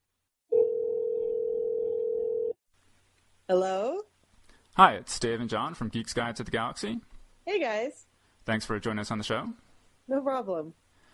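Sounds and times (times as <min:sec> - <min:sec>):
telephone dial tone while placing a call: 0:00.6 - 0:02.6
speech: 0:03.5 - 0:04.1, 0:04.8 - 0:10.8.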